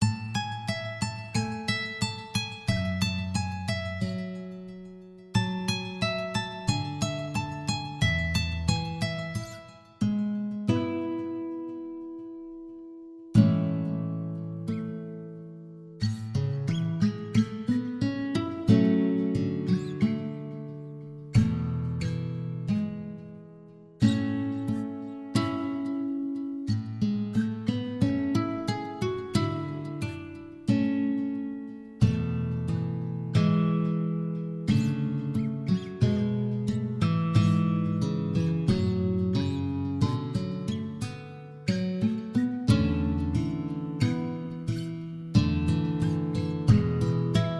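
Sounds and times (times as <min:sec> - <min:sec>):
nylon stringed guitar: 0:00.0 - 0:47.5.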